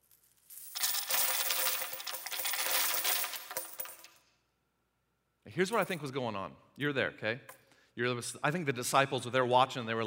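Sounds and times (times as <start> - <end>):
many coins pouring and clinking together: 0.0 - 4.2
speech: 5.6 - 10.0.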